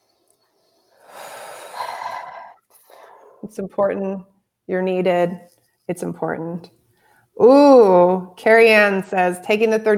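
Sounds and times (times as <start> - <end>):
group taking a long deep breath in an online meeting: 0.6 - 3.4
speech: 3.4 - 6.8, 7.4 - 9.9.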